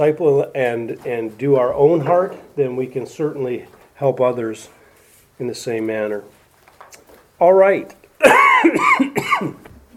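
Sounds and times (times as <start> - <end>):
speech: 0.0 - 4.8, 5.4 - 6.4, 7.4 - 9.7
person coughing throatily: 8.2 - 9.9.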